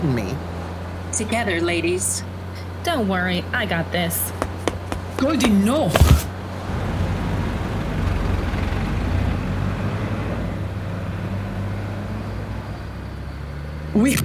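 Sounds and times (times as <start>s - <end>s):
trucks rumbling along a road: 0.0s - 14.2s
speech: 1.2s - 4.4s, 5.2s - 6.9s, 14.0s - 14.2s.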